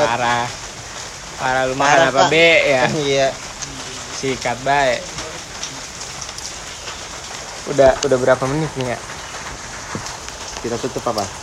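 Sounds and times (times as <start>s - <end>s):
speech: 0.0s - 0.6s, 1.4s - 5.1s, 7.7s - 9.1s, 10.6s - 11.4s
steady rain: 0.0s - 11.4s
laughter: 1.5s - 5.5s.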